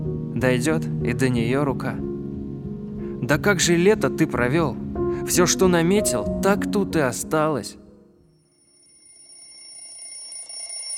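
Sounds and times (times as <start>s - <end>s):
speech: 0.4s - 2.1s, 3.2s - 7.8s
alarm clock ringing: 8.3s - 10.9s.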